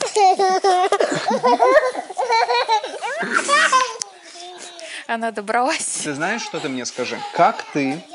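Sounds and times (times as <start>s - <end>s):
young child chattering and giggling: 0.0s - 5.0s
speech: 0.2s - 1.9s, 5.1s - 8.1s.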